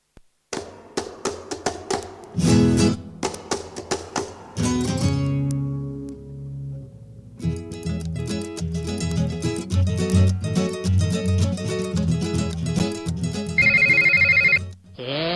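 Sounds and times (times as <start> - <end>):
music: 0.5 - 15.3
electronic telephone bell ringing: 13.6 - 14.8.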